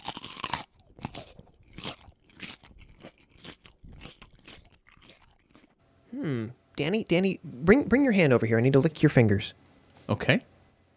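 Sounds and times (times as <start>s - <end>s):
crunchy bites and chewing of food with a honeycomb-like surface: 0.0s - 5.8s
speech: 6.2s - 10.5s.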